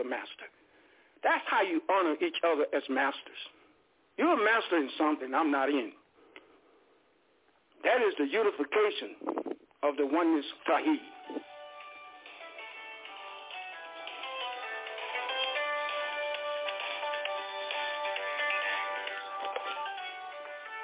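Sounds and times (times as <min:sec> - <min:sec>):
speech: 0:00.0 - 0:00.6, 0:01.2 - 0:03.6, 0:04.2 - 0:06.0, 0:07.8 - 0:11.5
phone ringing with a melodic electronic ringtone: 0:11.0 - 0:20.8.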